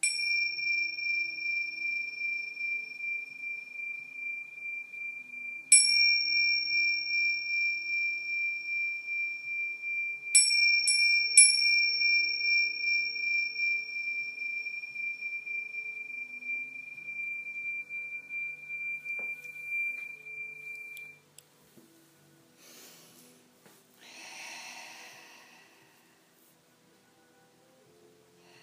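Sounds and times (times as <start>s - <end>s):
meditation chime ringing: 0.0s - 21.2s.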